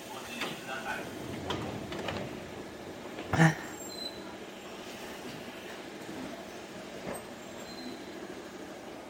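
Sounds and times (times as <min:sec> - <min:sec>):
train rumbling on its tracks departing from station platform: 0:00.0 - 0:09.0
train wheel squeal: 0:03.8 - 0:04.3, 0:07.2 - 0:08.2.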